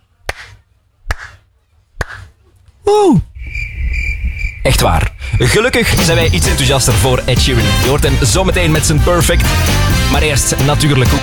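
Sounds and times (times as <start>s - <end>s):
slow isolated sharp claps mimicking lukewarm applause: 0.2s - 1.4s, 2.0s - 2.4s
speech: 2.9s - 3.3s, 4.7s - 11.2s.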